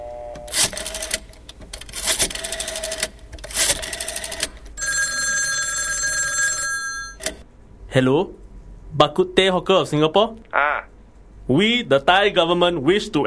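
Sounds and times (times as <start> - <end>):
secure telephone ringing on an outgoing call: 4.8 - 7.4
speech: 7.9 - 10.7, 11.5 - 13.2.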